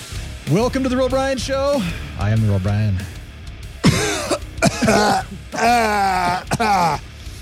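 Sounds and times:
speech: 0.5 - 3.2, 4.9 - 7.1
person coughing and hacking raspily: 3.8 - 7.0.

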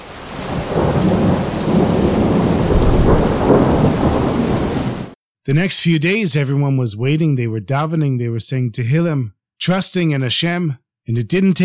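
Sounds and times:
heavy rain pouring down on dry desert earth: 0.0 - 5.2
low rumbling thunder: 0.0 - 5.2
speech: 5.5 - 11.6.

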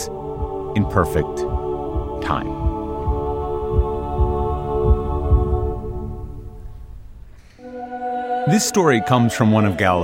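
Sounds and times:
soft low heartbeat thumps: 0.0 - 7.3
speech: 0.8 - 1.4, 2.2 - 2.6, 8.5 - 10.0.

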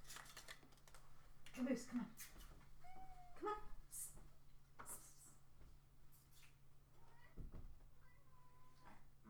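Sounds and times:
speech: 1.6 - 2.3
cat meowing: 2.8 - 3.7, 8.0 - 9.0.

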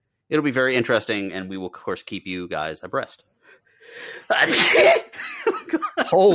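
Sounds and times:
speech: 0.3 - 3.3, 3.9 - 6.3
person sneezing: 4.3 - 5.1
laughter: 4.3 - 6.3.

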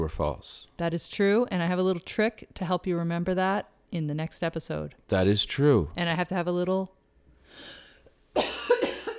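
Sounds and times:
speech: 0.0 - 7.8
cough into sleeve: 8.3 - 9.1.

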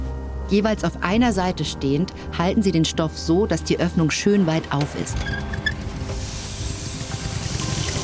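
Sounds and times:
speech: 0.5 - 5.6
gas burner flame hissing: 5.9 - 8.0.

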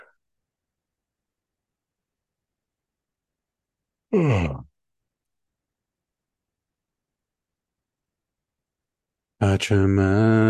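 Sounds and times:
breathy yawn sliding downward in pitch: 4.1 - 4.7
speech: 4.1 - 4.7, 9.4 - 10.4.

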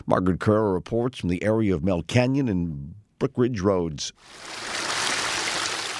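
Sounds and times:
speech: 0.1 - 4.8
muddy water flowing around K rails and down a sidewalk after rain in Duarte: 4.2 - 5.9.

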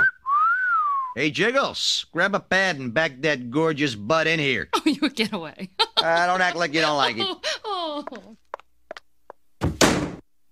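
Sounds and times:
speech: 1.2 - 8.2
laughter: 4.8 - 8.4
door slamming shut with a rattling thud: 9.6 - 10.2.

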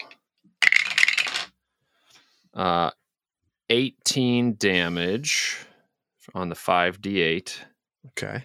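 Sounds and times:
handful of dice rolling across a hard surface: 0.6 - 1.5
speech: 2.6 - 3.0, 3.7 - 5.7, 6.3 - 8.4.

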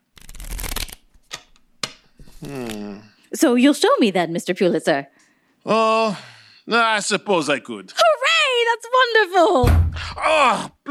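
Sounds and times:
deck of playing cards being shuffled: 0.2 - 1.6, 2.2 - 2.9
playing cards snapping: 0.2 - 2.0
speech: 2.4 - 8.0, 8.7 - 10.9.

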